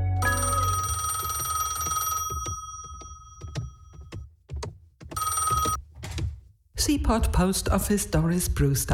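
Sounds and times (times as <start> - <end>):
metallic telephone bell ringing at a post office: 0.2 - 4.1, 5.2 - 5.8
soft knocks: 1.8 - 6.5
speech: 6.8 - 8.9.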